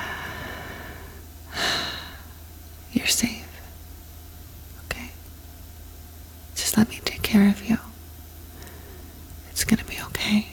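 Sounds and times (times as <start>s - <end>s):
single deep human breath: 0.0s - 2.4s, 8.5s - 9.3s
steady low hum: 0.0s - 10.5s
speech: 3.0s - 3.4s.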